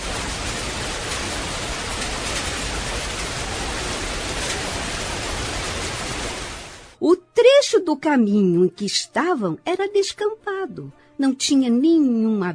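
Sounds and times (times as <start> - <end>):
heavy rain on an open shelterless stretch of path: 0.0 - 7.0
speech: 7.0 - 12.5.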